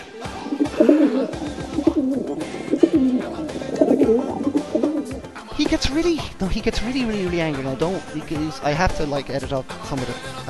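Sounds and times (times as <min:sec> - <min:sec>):
pigeon cooing: 0:00.0 - 0:05.4
speech: 0:06.0 - 0:10.4.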